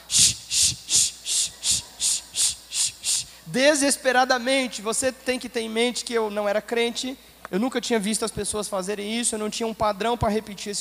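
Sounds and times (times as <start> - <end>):
voice imitating a pressure cooker hissing: 0.0 - 3.5
speech: 3.5 - 10.7.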